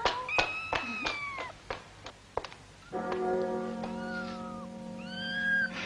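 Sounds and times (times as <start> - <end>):
cat meowing: 0.2 - 1.6, 3.8 - 5.8.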